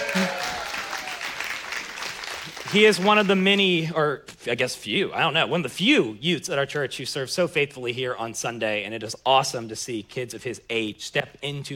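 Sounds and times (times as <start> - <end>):
large church audience applauding: 0.0 - 3.4
speech: 2.7 - 11.7.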